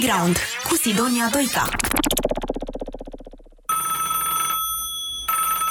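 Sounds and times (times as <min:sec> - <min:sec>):
speech: 0:00.1 - 0:01.9
old-fashioned telephone bell ringing: 0:03.7 - 0:05.6.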